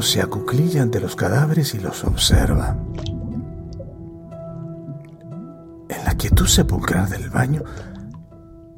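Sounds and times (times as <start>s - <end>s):
speech: 0.0s - 3.2s, 6.2s - 7.9s
viscous liquid bubbling and squelching in a bathtub: 2.1s - 5.7s, 6.6s - 8.7s
higher drips: 2.1s - 8.7s
steady low hum: 2.2s - 8.7s.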